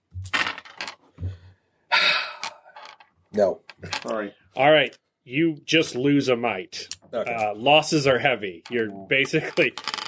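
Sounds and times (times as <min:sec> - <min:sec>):
dice clattering and rattling: 0:00.3 - 0:01.0, 0:02.4 - 0:03.0, 0:08.7 - 0:10.0
speech: 0:03.4 - 0:09.9.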